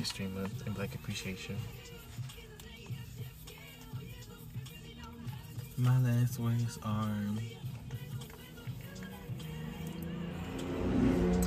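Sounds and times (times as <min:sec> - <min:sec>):
speech: 0:00.0 - 0:02.3, 0:05.8 - 0:07.6
car engine rumbling and revving: 0:04.2 - 0:11.4.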